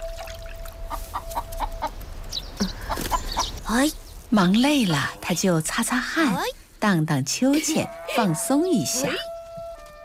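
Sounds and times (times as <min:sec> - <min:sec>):
chickens clucking while being fed in a farmyard: 0:00.9 - 0:02.0, 0:02.6 - 0:03.6
speech: 0:03.7 - 0:09.3.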